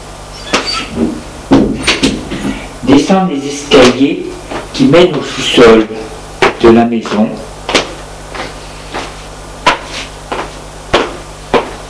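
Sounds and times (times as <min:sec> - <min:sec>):
door under the stairs creaking: 0:00.3 - 0:02.6
speech: 0:02.9 - 0:07.5.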